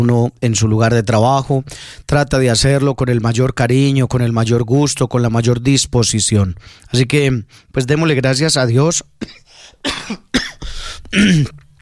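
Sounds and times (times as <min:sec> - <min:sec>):
speech: 0:00.0 - 0:11.6
harsh coughing from a strong virus: 0:09.2 - 0:11.6.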